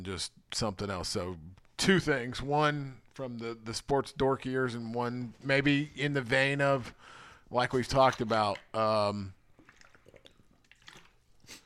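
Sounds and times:
speech: 0.0s - 9.4s
person gulping a drink of water: 8.2s - 11.6s.

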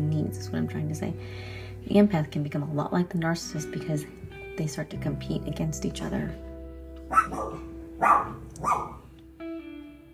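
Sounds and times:
speech: 0.3s - 6.5s, 7.1s - 8.8s
female dog barking: 7.1s - 9.1s.

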